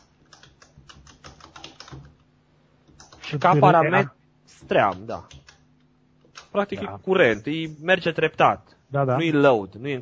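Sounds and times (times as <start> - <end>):
code being typed on a computer keyboard: 0.0 - 2.2, 2.9 - 3.6, 4.8 - 6.5
speech: 3.3 - 5.4, 6.5 - 10.0.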